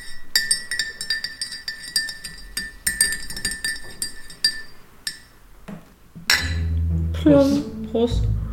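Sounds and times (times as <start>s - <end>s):
spoon stirring coffee in a ceramic cup: 0.0s - 5.4s
person speaking: 7.1s - 8.4s.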